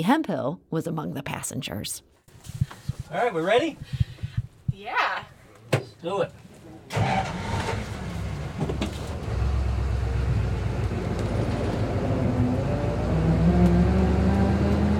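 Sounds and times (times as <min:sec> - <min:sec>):
speech: 0:00.0 - 0:04.1, 0:04.8 - 0:05.3, 0:06.0 - 0:07.6
vintage car engine rumbling: 0:06.9 - 0:14.9.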